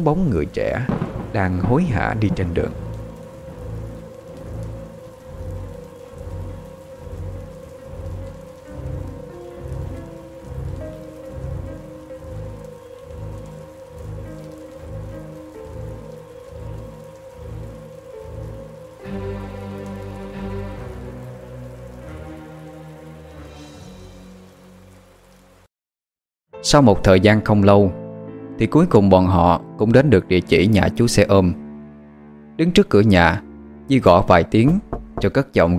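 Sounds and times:
speech: 0:00.0 - 0:02.8, 0:26.7 - 0:28.0, 0:28.6 - 0:31.6, 0:32.6 - 0:35.7
heavy rain pouring in a thunderstorm: 0:00.0 - 0:25.7
low rolling thunder rumbles: 0:00.4 - 0:23.8.

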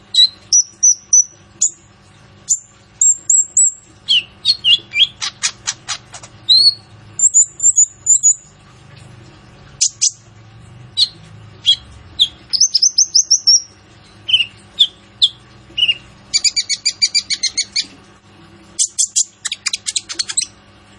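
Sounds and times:
sunbird singing training song for cage birds: 0:00.0 - 0:01.9, 0:02.5 - 0:05.6, 0:06.5 - 0:08.5, 0:11.0 - 0:17.9, 0:18.8 - 0:20.6.

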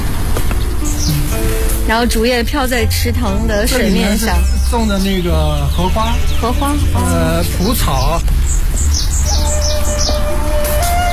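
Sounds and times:
small birds chirping beside a garden pond with lotus and cattails: 0:00.5 - 0:01.4, 0:03.5 - 0:11.0
speech: 0:01.9 - 0:08.7.

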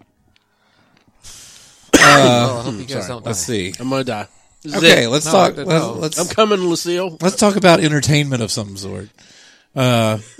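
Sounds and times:
breathy intake of air: 0:00.8 - 0:01.9
loud rough voiced cough: 0:01.9 - 0:02.8
throat clearing: 0:02.0 - 0:02.5
speech: 0:02.2 - 0:10.3.

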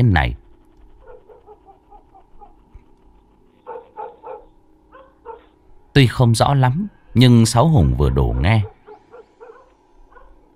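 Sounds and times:
speech: 0:00.0 - 0:00.4, 0:06.0 - 0:08.7
dog barking out on the main road: 0:01.0 - 0:02.6, 0:03.6 - 0:05.6, 0:08.2 - 0:10.4.

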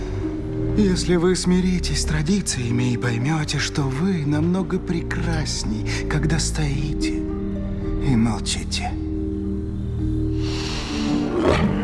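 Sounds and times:
sustained low musical tones: 0:00.0 - 0:11.8
speech: 0:00.8 - 0:07.4, 0:08.0 - 0:09.0
tiger roaring: 0:11.2 - 0:11.8.

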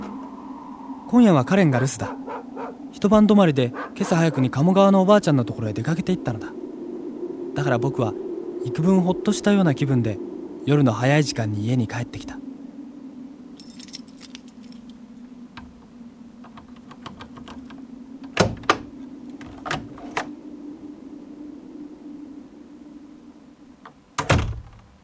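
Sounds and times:
steady low hum: 0:00.0 - 0:24.2
speech: 0:01.1 - 0:02.3, 0:02.9 - 0:06.6, 0:07.6 - 0:12.4
keys jingling: 0:13.6 - 0:14.9
door opening at home: 0:16.4 - 0:20.3, 0:24.2 - 0:24.8.

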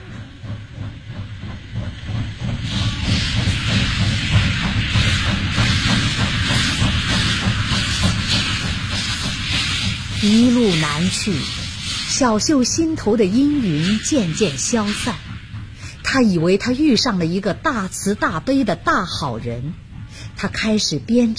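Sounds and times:
steam train departing with rhythmic chuffing: 0:00.0 - 0:21.3
speech: 0:10.2 - 0:15.2, 0:16.1 - 0:19.8, 0:20.4 - 0:21.3.

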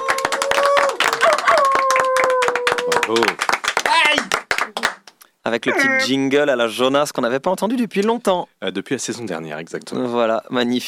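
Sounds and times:
small group hand clapping: 0:00.0 - 0:05.2
speech: 0:03.1 - 0:03.4, 0:05.5 - 0:10.8.

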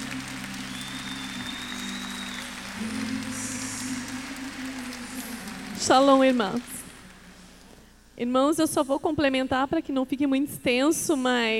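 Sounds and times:
church congregation clapping at a communion service: 0:00.0 - 0:07.8
speech: 0:05.8 - 0:06.8, 0:08.2 - 0:11.5.

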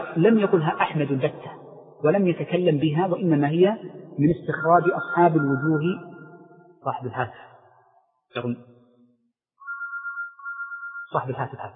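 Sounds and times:
speech: 0:00.2 - 0:06.1, 0:06.8 - 0:07.5, 0:08.3 - 0:08.7, 0:11.1 - 0:11.7
mobile phone ringtone: 0:04.6 - 0:06.0, 0:09.6 - 0:11.2.

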